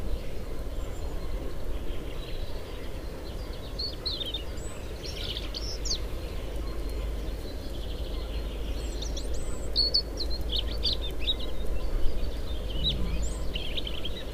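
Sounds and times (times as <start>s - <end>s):
European robin Erithacus rubecula singing: 0.1s - 14.3s
low steady rumble: 12.1s - 14.3s.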